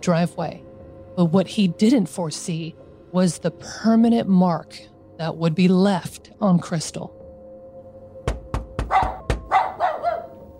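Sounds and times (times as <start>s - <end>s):
speech: 0.0s - 0.6s, 1.2s - 7.2s
sharp knocks or thuds: 8.2s - 9.7s
dog barking: 8.8s - 10.5s.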